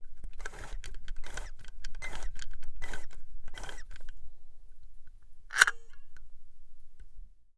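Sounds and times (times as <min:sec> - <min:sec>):
rewinding with reset to zero: 0:00.4 - 0:04.1.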